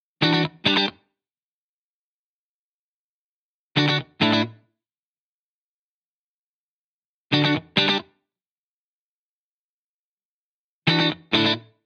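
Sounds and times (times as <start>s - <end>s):
seventies style guitar in D: 0.2s - 1.2s, 3.7s - 4.8s, 7.3s - 8.3s, 10.8s - 11.8s.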